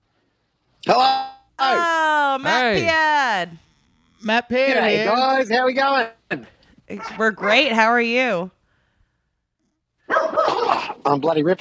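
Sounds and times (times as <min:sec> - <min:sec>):
speech: 0:00.8 - 0:03.6, 0:04.2 - 0:08.6, 0:10.7 - 0:11.6
dog barking: 0:07.0 - 0:07.8, 0:10.0 - 0:11.0.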